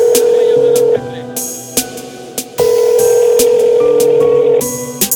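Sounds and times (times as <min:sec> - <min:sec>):
phone line ringing tones while placing a call: 0:00.0 - 0:01.4, 0:02.6 - 0:05.0.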